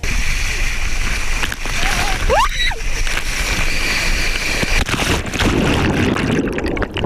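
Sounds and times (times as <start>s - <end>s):
rushing water on a water slide: 0.0s - 7.0s
person screaming on a water slide: 1.8s - 2.8s.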